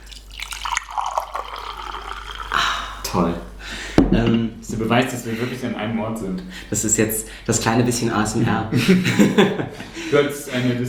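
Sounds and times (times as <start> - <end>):
tea being poured into a cup: 0.0 - 3.5
speech: 3.1 - 3.5, 4.1 - 10.8
laughter: 8.7 - 10.8.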